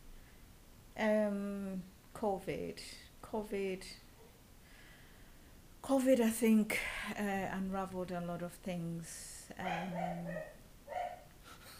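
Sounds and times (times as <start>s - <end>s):
speech: 1.0s - 4.0s, 5.8s - 10.6s
dog barking in an office: 9.6s - 11.3s.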